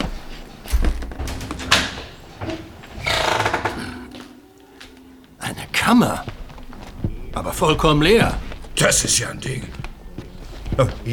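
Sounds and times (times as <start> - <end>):
heavy thud of a door opening: 0.7 - 4.0
speech: 5.9 - 6.3, 7.4 - 9.8, 10.8 - 11.1.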